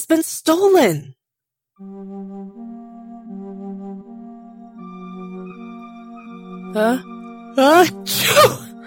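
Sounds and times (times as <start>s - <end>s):
speech: 0.0s - 1.2s, 1.8s - 2.7s, 6.7s - 8.7s
person imitating a sneeze: 8.1s - 8.7s.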